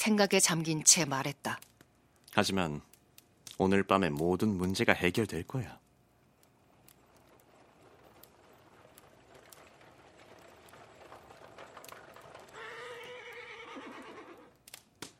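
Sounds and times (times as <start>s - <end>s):
speech: 0.0s - 1.7s, 2.4s - 2.9s, 3.6s - 5.8s
hooves clip-clopping: 6.4s - 15.1s
rolling clatter of a horse-drawn carriage: 6.5s - 14.3s
horse neighing: 12.5s - 14.6s.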